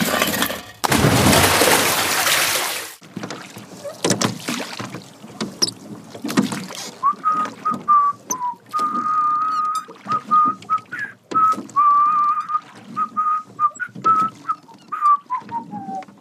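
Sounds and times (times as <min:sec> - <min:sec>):
canal water splashing: 0:00.0 - 0:16.1
small boat knocking and scraping while shoved into canal water: 0:00.0 - 0:16.1
person whistling a wavering tune: 0:07.0 - 0:16.1.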